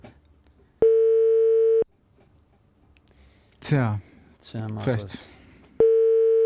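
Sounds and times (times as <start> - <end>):
telephone ringback tone: 0.8 - 1.9, 5.8 - 6.4
speech: 3.7 - 5.4.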